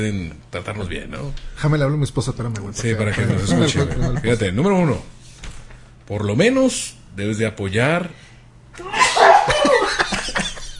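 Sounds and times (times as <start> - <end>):
speech: 0.0 - 5.2, 6.1 - 8.2, 8.8 - 9.0
laughter: 3.2 - 4.4, 8.9 - 10.7
sneeze: 8.8 - 9.7.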